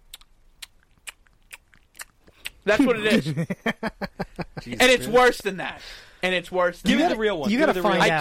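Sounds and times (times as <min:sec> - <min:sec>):
crunchy chewing: 0:00.0 - 0:02.6
speech: 0:02.6 - 0:08.1.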